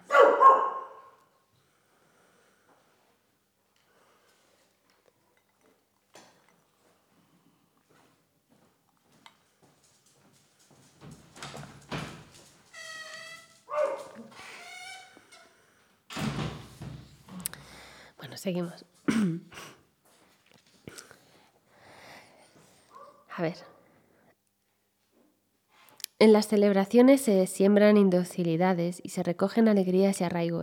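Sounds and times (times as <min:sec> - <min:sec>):
pet dogs barking and yelping at an opened door: 0:00.0 - 0:01.2, 0:13.7 - 0:14.4
speech: 0:18.4 - 0:19.7, 0:23.4 - 0:23.7, 0:26.2 - 0:30.6.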